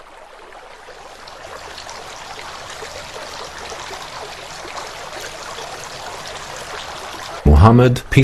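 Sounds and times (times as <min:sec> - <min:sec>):
running water splashing: 0:00.0 - 0:07.5
speech: 0:07.6 - 0:08.2.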